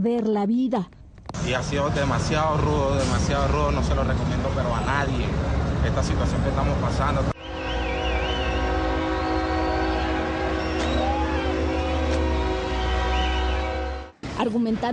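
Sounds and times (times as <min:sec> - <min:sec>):
speech: 0:00.0 - 0:07.3, 0:14.4 - 0:14.9
freight train rumbling: 0:01.4 - 0:14.6
wavering high metallic squeals: 0:07.4 - 0:14.1
loud sustained freight train horn blaring: 0:07.4 - 0:14.3.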